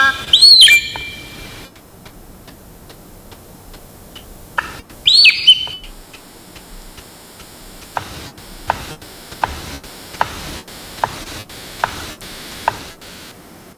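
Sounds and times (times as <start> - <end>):
male palm cockatoo giving short whistled calls: 0.0 - 1.5, 5.0 - 5.9
palm cockatoo drumming stick taps in a loose uneven beat: 1.7 - 5.0, 5.6 - 10.4, 11.0 - 13.0.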